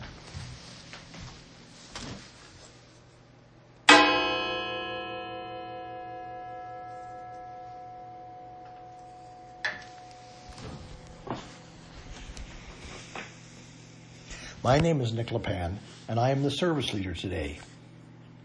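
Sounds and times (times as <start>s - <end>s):
mindfulness bell struck during a service: 3.9s - 11.7s
speech: 14.6s - 17.7s.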